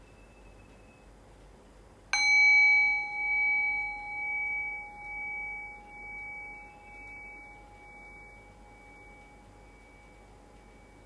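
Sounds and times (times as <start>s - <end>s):
meditation bell ringing: 2.2s - 11.0s.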